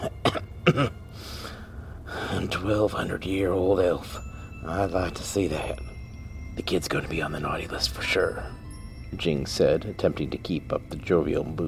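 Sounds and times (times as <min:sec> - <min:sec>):
harsh coughing fit: 0:00.0 - 0:01.0
speech: 0:00.7 - 0:01.3, 0:02.3 - 0:05.9, 0:06.6 - 0:11.6.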